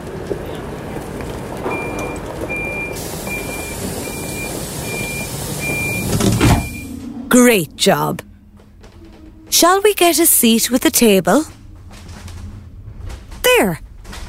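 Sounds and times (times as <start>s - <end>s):
steady low rumble: 0.0s - 14.2s
train door warning beeps after open button is pressed: 1.7s - 8.2s
speech: 7.4s - 8.3s, 9.5s - 11.6s, 13.5s - 13.8s.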